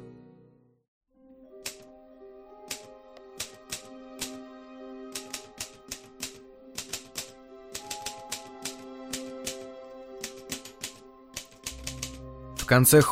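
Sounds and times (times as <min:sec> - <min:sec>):
typewriter keystrokes: 0:01.6 - 0:01.9, 0:02.7 - 0:04.4, 0:05.1 - 0:12.7
speech: 0:12.7 - 0:13.1.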